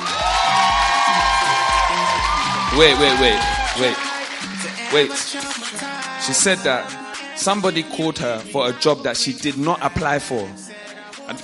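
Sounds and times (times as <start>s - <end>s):
audience cheering and whooping: 0.0s - 4.6s
rhythmic thumping: 0.0s - 7.7s, 9.4s - 11.4s
speech: 2.7s - 4.0s, 4.9s - 10.6s, 11.3s - 11.4s.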